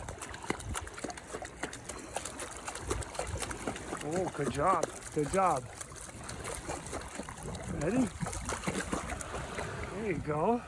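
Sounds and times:
water splashing and sloshing as a puppy paddles during swim training: 0.0s - 10.6s
speech: 4.1s - 5.8s, 7.8s - 8.3s, 10.0s - 10.6s.

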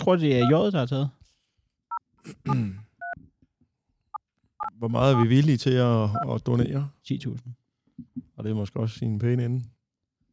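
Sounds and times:
speech: 0.0s - 1.2s, 2.2s - 2.8s, 4.8s - 7.6s, 8.2s - 9.7s
touch-tone beeps from dialing a telephone: 0.4s - 0.6s.

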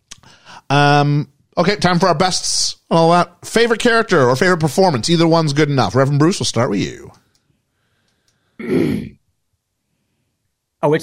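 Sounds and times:
speech: 0.7s - 7.2s, 8.6s - 9.2s, 10.8s - 11.0s
throat clearing with a gravelly rasp: 8.6s - 9.2s.

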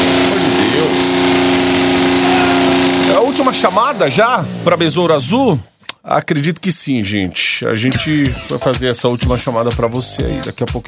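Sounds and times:
rumbling street noise: 0.0s - 5.5s
motorcycle engine droning outside: 0.0s - 5.6s
speech: 3.4s - 10.8s.

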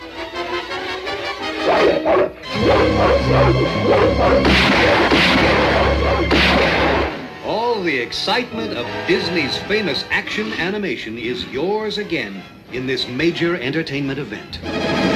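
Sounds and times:
hunting dog barking excitedly while tracking a scent: 1.6s - 6.7s
loud dense orchestral music: 1.6s - 7.5s
speech: 1.8s - 6.7s, 7.8s - 15.1s.

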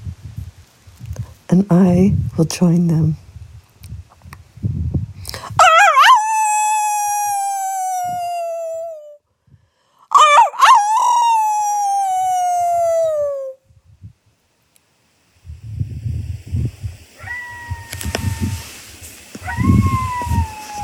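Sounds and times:
speech: 1.5s - 3.2s
coyotes howling: 5.6s - 9.2s, 10.1s - 13.6s, 17.1s - 20.8s.

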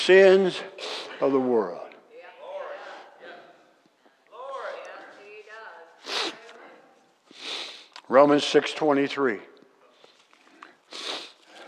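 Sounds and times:
speech: 0.0s - 1.9s, 8.1s - 9.5s
person sniffling: 6.0s - 6.5s, 7.3s - 7.9s, 10.9s - 11.6s.

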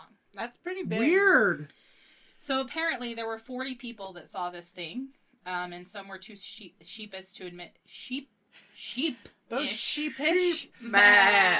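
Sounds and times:
speech: 0.4s - 1.8s, 2.4s - 11.5s
several people imitating sheep bleating: 10.8s - 11.5s.

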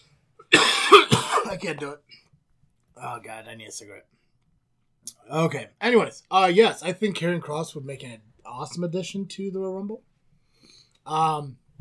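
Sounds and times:
harsh cough: 0.4s - 1.7s
speech: 1.0s - 2.2s, 3.0s - 4.2s, 5.0s - 10.1s, 11.0s - 11.6s.

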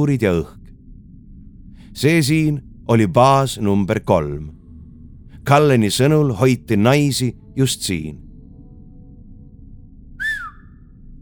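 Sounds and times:
speech: 0.0s - 0.6s, 2.0s - 4.6s, 5.5s - 8.2s
low steady rumble: 0.0s - 11.2s
short soft whistle with a slightly falling pitch: 10.2s - 11.0s.

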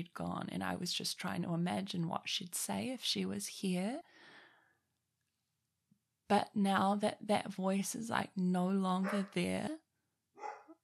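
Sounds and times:
speech: 0.0s - 4.3s, 6.3s - 9.8s
dog barking: 10.4s - 10.8s.

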